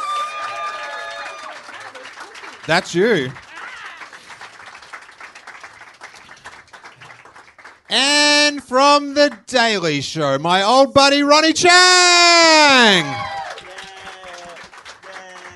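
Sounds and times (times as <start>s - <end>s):
loud whooping cheer: 0.0s - 2.0s, 11.8s - 15.5s
crowd applauding: 0.0s - 9.4s, 12.4s - 15.5s
speech: 2.6s - 3.4s, 8.7s - 13.3s.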